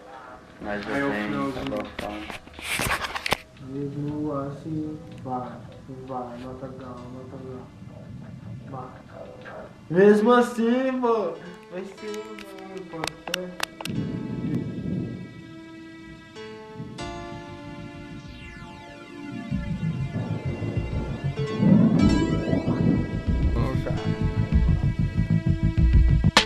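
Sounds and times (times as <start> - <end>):
steady hiss: 0.0 - 25.5
faint tonal hum: 0.0 - 25.8
speech: 0.6 - 3.0, 3.6 - 7.8, 8.7 - 9.0, 9.9 - 14.1
deep rolling thunder as rain approaches: 3.6 - 10.4, 13.8 - 26.4.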